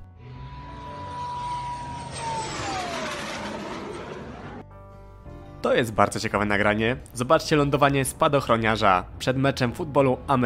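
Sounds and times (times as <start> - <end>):
aircraft engine roar during a low-pass flyover: 0.0 - 5.3
speech: 5.6 - 10.4.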